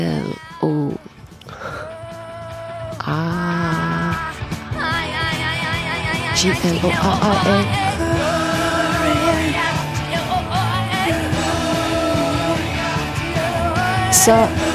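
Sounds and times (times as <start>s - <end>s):
woman's strained shouted vocals crying out a name: 0.0s - 1.1s, 2.9s - 8.2s
full rock'n'roll band playing a loud dense chorus: 4.2s - 14.7s
speech: 6.4s - 8.2s, 14.1s - 14.7s.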